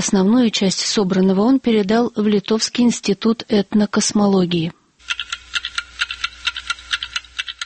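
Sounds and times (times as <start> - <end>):
speech: 0.0 - 4.8
antique wooden, metal and ceramic wall clocks ticking: 5.0 - 7.6.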